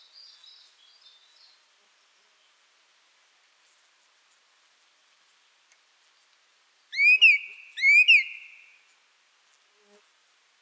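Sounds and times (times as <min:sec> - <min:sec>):
song thrush singing a clear whistled phrase: 0:07.0 - 0:08.7.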